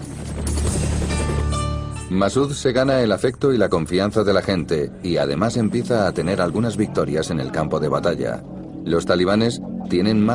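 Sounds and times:
helicopter rotor thumping in Afghanistan: 0.0s - 2.0s
helicopter engine whine in Afghanistan: 0.0s - 10.3s
speech: 2.1s - 10.3s.

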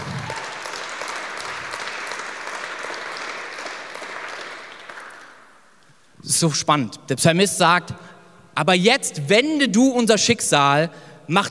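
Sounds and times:
audience applause: 0.0s - 5.6s
speech: 6.2s - 11.4s.

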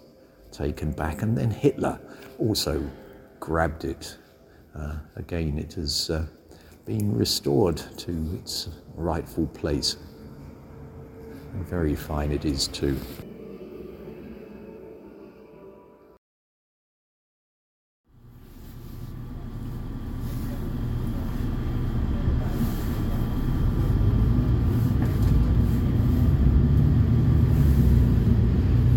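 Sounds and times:
speech: 0.6s - 4.2s, 4.8s - 10.1s, 11.6s - 13.2s
bus engine drone as it pulls away: 18.2s - 28.9s
bus interior rumble leaving station: 18.2s - 28.9s.

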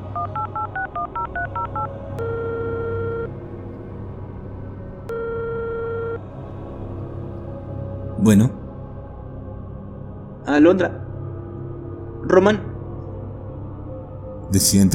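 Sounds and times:
telephone keypad beeps of a number being dialed: 0.2s - 3.3s
telephone ringing tone: 0.2s - 3.3s, 5.1s - 6.2s
speech: 8.2s - 8.6s, 10.6s - 11.0s, 12.3s - 12.7s, 14.5s - 14.9s.

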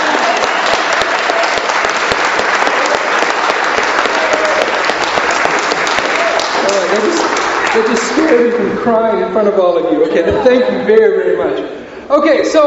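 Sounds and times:
audience applauding in a church: 0.0s - 8.6s
speech: 7.8s - 12.6s.

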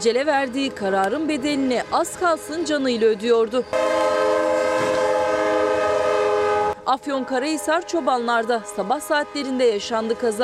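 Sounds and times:
speech: 0.0s - 4.3s, 6.9s - 10.4s
rumbling rail noise of approaching train: 0.1s - 10.4s
Eskişehir–Konya train horn blaring at a level crossing in Çobanlar Turkey: 3.7s - 10.4s.

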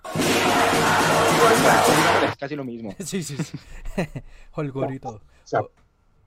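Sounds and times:
large crowd roaring at a national strike protest: 0.0s - 2.4s
speech: 1.7s - 5.8s
laughter: 2.9s - 4.3s.

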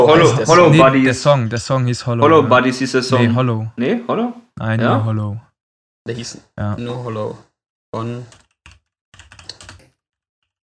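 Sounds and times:
speech: 0.0s - 8.4s
computer keys clattering while typing a search: 8.3s - 10.0s.

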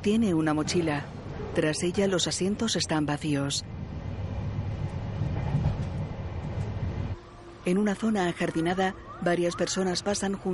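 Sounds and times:
speech: 0.0s - 3.8s, 7.6s - 10.5s
train travelling on rails heard from inside a carriage: 0.4s - 7.8s.

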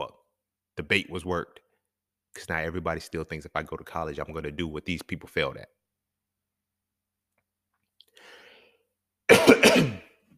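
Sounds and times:
speech: 0.8s - 1.6s, 2.4s - 5.8s, 9.7s - 10.0s
choking cough after inhaling spit: 9.3s - 10.2s.

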